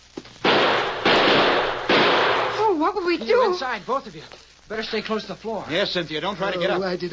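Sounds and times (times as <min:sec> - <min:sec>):
six-shooter revolver gunshots during a shootout: 0:00.4 - 0:02.6
speech: 0:03.1 - 0:07.1.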